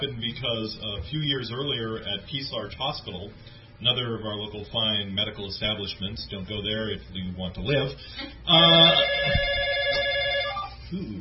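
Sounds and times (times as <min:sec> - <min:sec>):
speech: 0:00.0 - 0:10.1, 0:10.9 - 0:11.1
telephone ringing with a buzzing electronic tone: 0:08.5 - 0:10.8.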